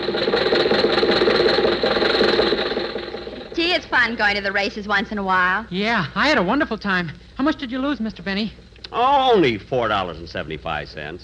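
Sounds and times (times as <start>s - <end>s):
car engine running: 0.0s - 3.9s
speech: 4.1s - 11.2s.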